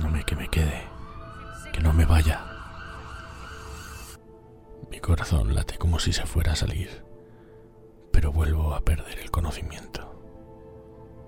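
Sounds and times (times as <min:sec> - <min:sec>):
ambulance siren wailing: 0:00.0 - 0:04.2
speech: 0:00.3 - 0:00.9, 0:02.0 - 0:02.6, 0:04.9 - 0:07.1, 0:08.2 - 0:10.1.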